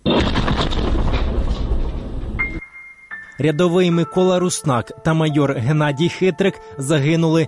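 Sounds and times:
explosion of an old van packed with TNT at a checkpoint near Mariupol Ukraine: 0.0 - 2.6
heavy crackling debris from a van explosion: 0.0 - 2.6
speech: 3.4 - 7.4.

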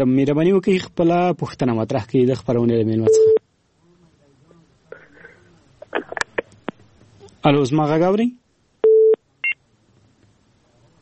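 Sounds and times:
speech: 0.0 - 3.4, 7.4 - 8.4
phone-line busy tone from a dropped caller connection: 8.8 - 9.2.

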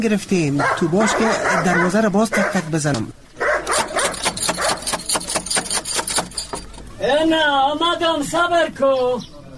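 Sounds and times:
speech: 0.0 - 3.8, 7.0 - 9.3
dog barking: 0.6 - 2.7, 3.4 - 4.9.

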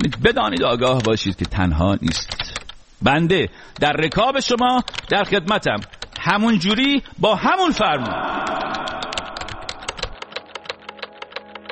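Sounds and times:
typing on a computer keyboard: 0.0 - 2.8, 3.8 - 6.8, 8.4 - 11.7
speech: 0.0 - 8.8.

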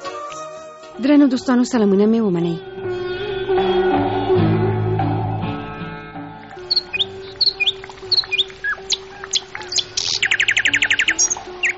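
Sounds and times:
speech: 1.1 - 2.8
sustained tones: 2.6 - 9.8
birds chirping and singing: 6.6 - 11.7.

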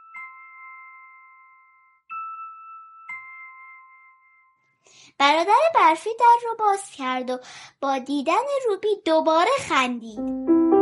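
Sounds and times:
house doorbell chiming with electronic tones: 0.0 - 4.7
speech: 4.9 - 10.4.

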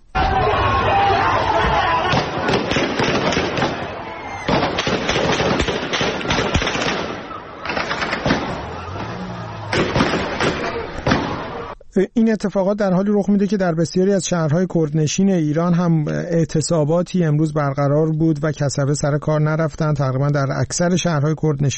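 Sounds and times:
loud agitated crowd of protesters: 0.0 - 4.8, 7.1 - 11.8
people shouting: 0.0 - 5.7, 6.6 - 11.8
rapid bursts of gunfire during street clashes in Paveh Iran: 2.1 - 8.7, 9.7 - 11.6
speech: 12.0 - 21.7.

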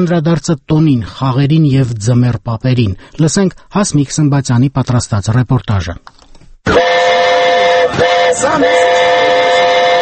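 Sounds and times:
speech: 0.0 - 7.2, 7.9 - 9.4
25-seat children's amusement train whistling in a town square: 6.7 - 9.9.

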